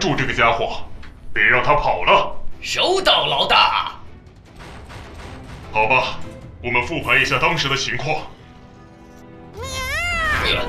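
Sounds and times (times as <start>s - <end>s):
speech: 0.0s - 4.0s, 5.7s - 8.3s
cat meowing in a cartoon: 9.6s - 10.6s.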